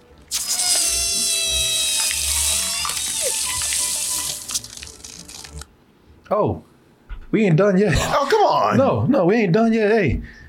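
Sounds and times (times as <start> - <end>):
water hose spraying: 0.3 - 5.7
speech: 6.3 - 6.7, 7.3 - 10.4.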